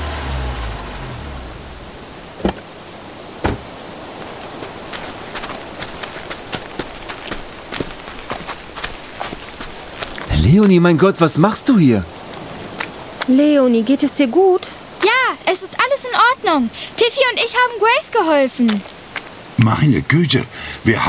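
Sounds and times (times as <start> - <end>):
car engine rumble pulling up: 0.0 - 4.6
steady hiss: 0.0 - 21.0
car doors slamming: 2.3 - 2.7, 3.4 - 3.8
quick footsteps crunching: 3.4 - 13.4
speech: 10.5 - 12.2, 13.3 - 14.8, 15.5 - 19.0, 19.6 - 21.0.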